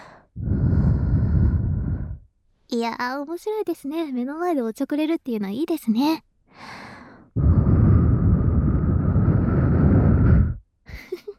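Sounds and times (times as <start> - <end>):
guinea pig breathing into a microphone attached to it: 0.3 - 2.2, 7.4 - 10.6
speech: 2.7 - 6.9.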